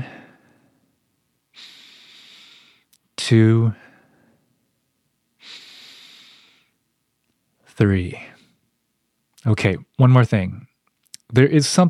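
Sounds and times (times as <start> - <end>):
deep breathing during a group grounding exercise: 0.0 - 0.9, 1.5 - 3.0, 5.4 - 6.8
speech: 3.3 - 3.9, 7.8 - 8.3, 9.4 - 10.7, 11.3 - 11.8.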